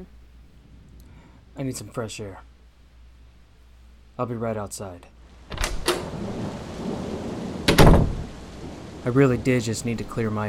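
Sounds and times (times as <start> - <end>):
speech: 1.6 - 2.5, 4.2 - 5.6, 9.0 - 10.4
heavy rain pouring: 5.2 - 10.4.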